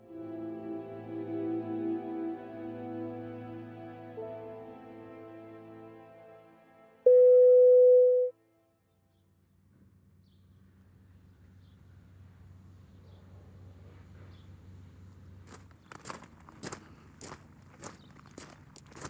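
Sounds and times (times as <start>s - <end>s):
steady electronic signal tone marking where to stop audio story playback: 7.1s - 8.3s.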